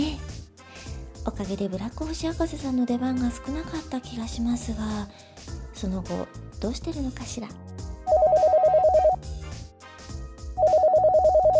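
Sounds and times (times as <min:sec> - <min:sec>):
soft music: 0:00.0 - 0:11.5
speech: 0:01.2 - 0:07.7
telephone ringing with trilling electronic tones: 0:08.1 - 0:09.2, 0:10.6 - 0:11.5.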